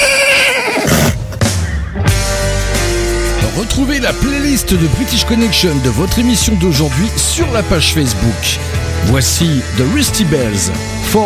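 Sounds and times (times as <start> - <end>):
horse whinnying: 0.0 - 1.5
music: 0.0 - 11.2
speech: 3.8 - 11.2.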